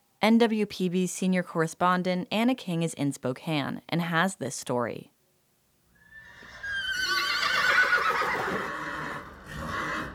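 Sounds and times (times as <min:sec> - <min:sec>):
faint noise: 0:00.0 - 0:10.1
speech: 0:00.2 - 0:05.1
tall black-brown horse evacuated from fires neighing in distress: 0:06.0 - 0:10.1.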